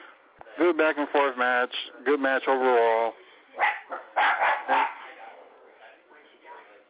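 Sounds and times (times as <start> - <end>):
speech: 0.6 - 3.7
dogs barking: 3.6 - 5.6.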